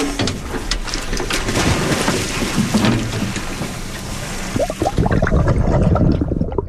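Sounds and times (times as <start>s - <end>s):
research boat and water noise: 0.0s - 6.6s.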